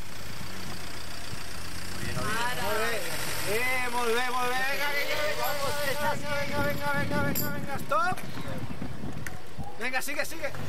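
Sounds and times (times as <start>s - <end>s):
car engine idling: 0.0s - 7.2s
speech: 3.5s - 8.7s, 9.8s - 10.6s.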